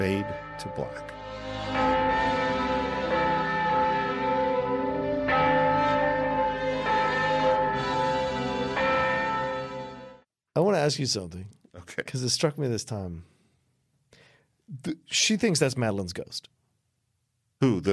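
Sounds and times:
speech: 0:00.0 - 0:02.0, 0:10.8 - 0:13.3, 0:14.7 - 0:16.5, 0:17.6 - 0:17.9
church bell tolling: 0:00.0 - 0:10.2.

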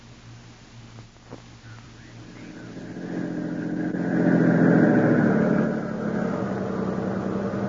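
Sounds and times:
car engine humming driving along a rough road at night: 0:00.0 - 0:07.6.

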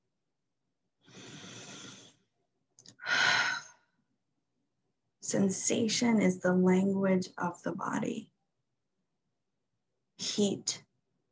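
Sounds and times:
deep breath with inhale and sighing exhale: 0:01.0 - 0:02.3, 0:03.0 - 0:04.0
speech: 0:05.3 - 0:08.3, 0:10.4 - 0:10.8.

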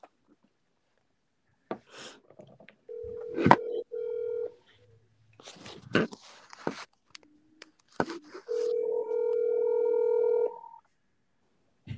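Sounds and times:
phone outgoing ringback tone: 0:02.9 - 0:04.6, 0:08.5 - 0:10.8.

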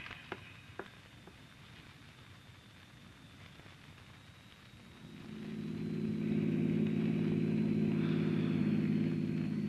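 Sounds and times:
car engine humming as the vehicle drives along: 0:05.1 - 0:09.6.

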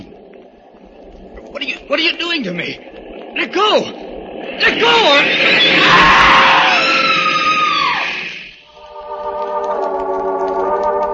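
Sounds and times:
steady droning mechanical hum: 0:00.0 - 0:11.1
speech: 0:01.6 - 0:04.0, 0:04.6 - 0:06.1
woman screaming on a train platform: 0:05.7 - 0:08.2.

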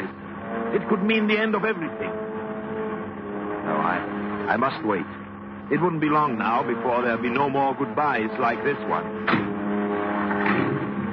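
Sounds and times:
car engine rumbling while driving slowly down a driveway in the rain: 0:00.0 - 0:11.1
speech: 0:00.7 - 0:02.3, 0:03.7 - 0:09.4.

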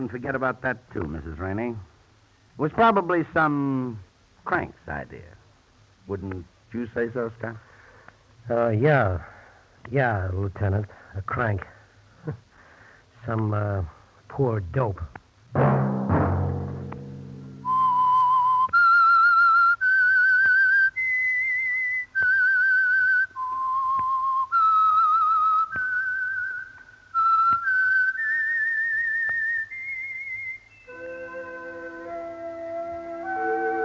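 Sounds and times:
speech: 0:00.0 - 0:01.9, 0:02.6 - 0:05.4, 0:06.1 - 0:07.7, 0:08.4 - 0:12.4, 0:13.2 - 0:15.9
solo whistled theme tune: 0:17.6 - 0:33.8.

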